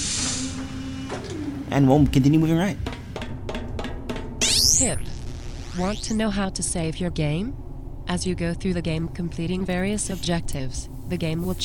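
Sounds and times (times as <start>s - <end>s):
video game door sliding open with pneumatic hiss: 0.0s - 1.0s
low mechanical hum of video game door: 0.0s - 11.6s
speech: 1.1s - 2.9s, 4.8s - 5.1s, 5.8s - 11.6s.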